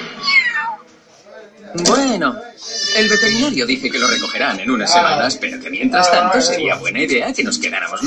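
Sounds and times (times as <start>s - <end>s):
cat meowing: 0.2s - 0.9s, 2.6s - 4.5s
speech: 1.8s - 8.0s.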